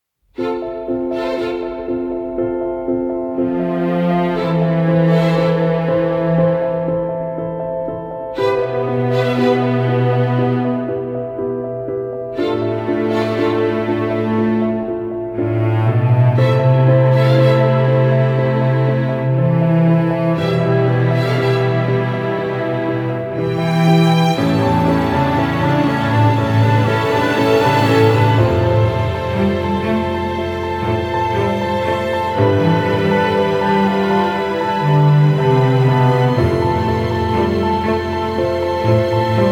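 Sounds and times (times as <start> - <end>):
orchestra: 0.4 - 39.4.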